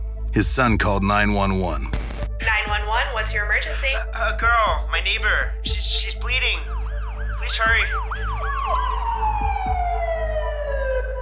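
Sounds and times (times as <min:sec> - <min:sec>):
speech: 0:00.4 - 0:02.0, 0:02.7 - 0:06.8, 0:07.4 - 0:09.2
police car siren wailing: 0:06.4 - 0:11.2.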